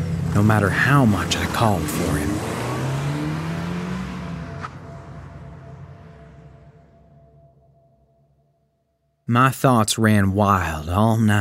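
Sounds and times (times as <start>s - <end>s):
car engine revving and accelerating: 0.0s - 7.6s
speech: 0.4s - 2.6s, 9.3s - 11.3s.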